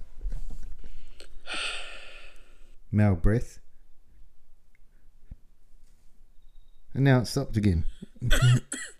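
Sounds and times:
speech: 0:02.9 - 0:03.6, 0:07.0 - 0:08.9
man coughing: 0:08.2 - 0:08.9.

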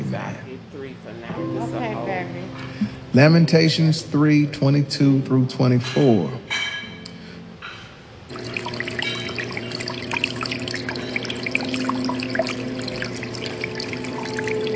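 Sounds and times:
speech: 0:00.1 - 0:06.7
water running steadily: 0:08.3 - 0:14.7
faint sustained humming tone: 0:08.5 - 0:14.7.

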